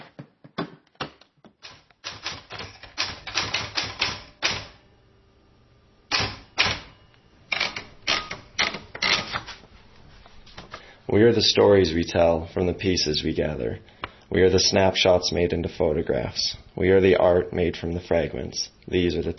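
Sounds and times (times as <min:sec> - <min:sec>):
typewriter keys clacking: 0:01.6 - 0:04.7, 0:07.5 - 0:09.5
speech: 0:11.1 - 0:19.3.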